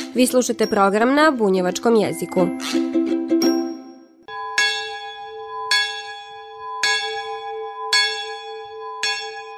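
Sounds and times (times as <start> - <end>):
speech: 0.2 - 2.9
old village church bell ringing: 4.3 - 9.5.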